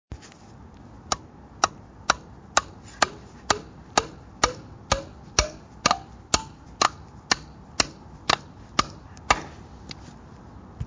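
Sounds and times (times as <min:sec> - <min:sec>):
hammer hitting nail: 0:01.1 - 0:09.5.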